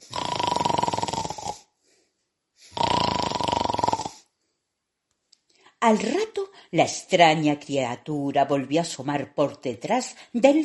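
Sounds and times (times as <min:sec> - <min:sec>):
woman in a rocking chair fake snoring with rattling rasps: 0:00.0 - 0:01.6, 0:02.7 - 0:04.2
speech: 0:05.8 - 0:10.6.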